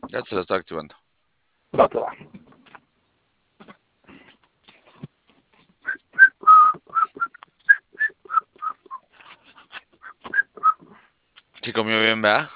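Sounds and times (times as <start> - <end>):
speech: 0.1 - 1.0, 1.7 - 2.4, 11.7 - 12.5
contented person whistling short high notes after eating: 5.8 - 9.1, 10.0 - 10.9.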